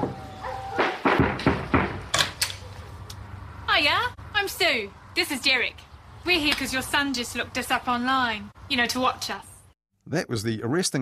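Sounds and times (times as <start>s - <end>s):
knocking on a door: 0.8s - 2.0s
speech: 3.8s - 9.5s, 10.1s - 11.0s.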